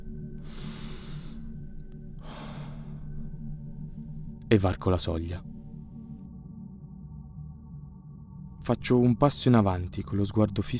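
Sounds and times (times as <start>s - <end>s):
person taking deep breaths: 0.4s - 1.6s, 2.2s - 3.3s
speech: 4.5s - 5.5s, 8.7s - 10.7s.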